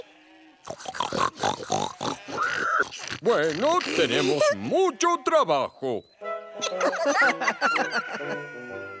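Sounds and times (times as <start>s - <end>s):
several voices grunting and oinking in harmony imitating pigs: 0.6s - 4.9s
speech: 3.3s - 8.6s
laughter: 6.6s - 8.7s.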